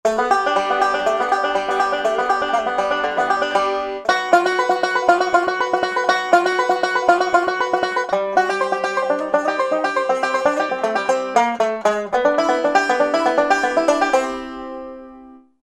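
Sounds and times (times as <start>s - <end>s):
country banjo phrase: 0.1s - 15.5s.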